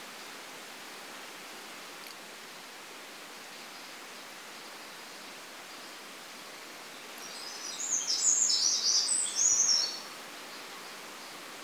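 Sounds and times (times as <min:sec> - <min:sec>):
background hiss: 0:00.0 - 0:11.6
Eurasian wren Troglodytes troglodytes song: 0:06.9 - 0:11.4.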